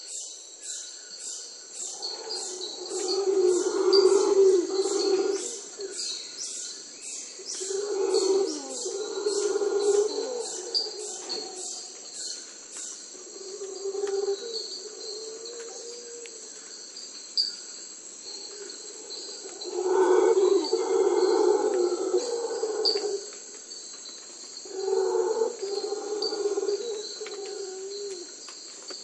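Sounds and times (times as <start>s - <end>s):
howler monkey: 1.9s - 6.1s, 7.5s - 12.1s, 13.2s - 16.6s, 18.4s - 23.4s, 24.6s - 28.4s.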